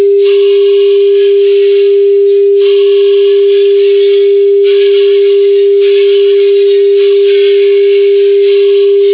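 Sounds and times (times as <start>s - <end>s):
hum: 0.0s - 9.1s.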